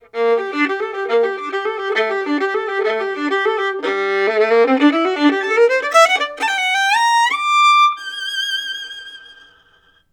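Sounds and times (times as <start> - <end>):
violin recorded in stereo through tube equipment: 0.0 - 10.1.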